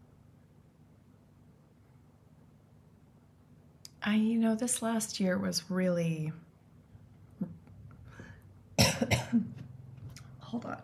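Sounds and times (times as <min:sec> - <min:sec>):
speech: 0:04.0 - 0:06.4
harsh coughing from coconut stuck in the throat: 0:08.8 - 0:09.5.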